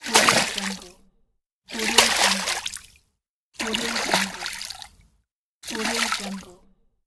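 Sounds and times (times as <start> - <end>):
water splash: 0.0 - 1.0, 1.7 - 3.0, 3.6 - 6.7.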